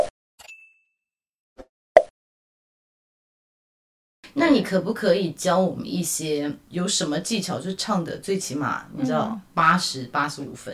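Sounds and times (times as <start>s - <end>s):
bright bell ding: 0.4s - 1.0s
speech: 4.4s - 10.7s.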